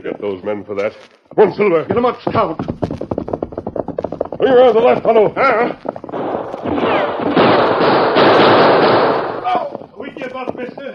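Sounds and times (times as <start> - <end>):
speech: 0.2 - 2.8, 4.4 - 5.9
gunfire in an old-time Western radio drama: 6.1 - 9.8.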